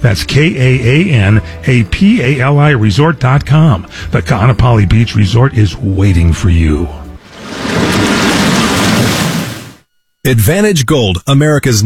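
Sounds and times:
speech: 0:00.0 - 0:07.0, 0:10.2 - 0:11.8
deep rumble of thunder: 0:07.2 - 0:09.8
heavy steady rain hissing in a thunderstorm: 0:07.2 - 0:09.8.

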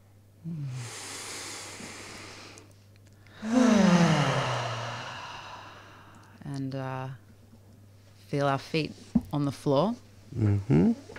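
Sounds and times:
deep breathing during a group breathing exercise: 0:00.4 - 0:06.4
speech: 0:06.6 - 0:07.2, 0:08.3 - 0:11.1.

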